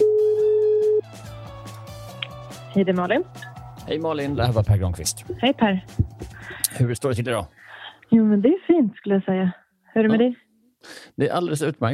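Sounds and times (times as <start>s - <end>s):
telephone tone while a call is placed: 0.0s - 1.1s
speech: 2.8s - 6.1s, 6.8s - 11.9s.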